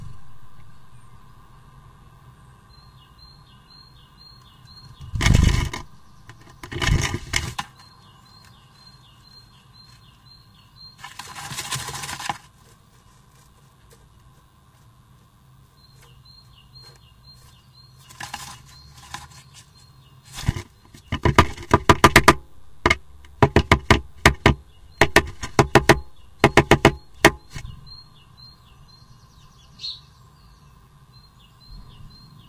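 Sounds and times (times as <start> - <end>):
nest building: 4.8 - 27.9.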